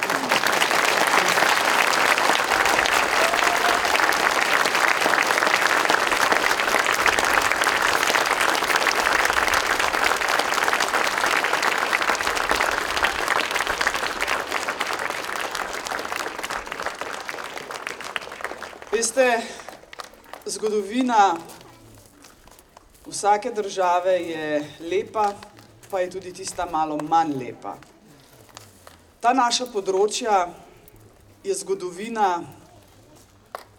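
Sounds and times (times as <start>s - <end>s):
large audience applauding: 0.0s - 20.5s
speech: 20.6s - 21.5s, 23.2s - 28.0s, 29.2s - 30.6s, 31.4s - 32.6s.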